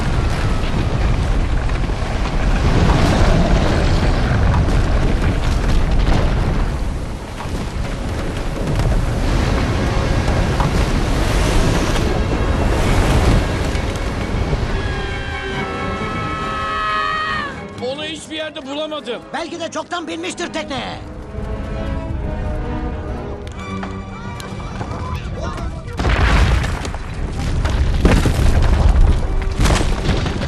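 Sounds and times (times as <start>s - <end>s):
deep booming rumbles: 0.0s - 15.5s, 25.6s - 30.4s
rushing water from cracking glaciers: 0.0s - 17.7s
rocks toppling: 0.0s - 30.4s
speech: 19.6s - 21.1s.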